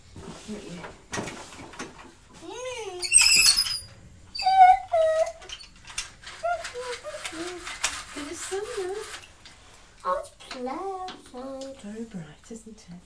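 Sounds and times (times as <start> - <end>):
soft rustling: 0.0 - 3.0, 6.1 - 12.2
speech: 0.5 - 1.3
squeaky toy squeaking: 3.0 - 5.4.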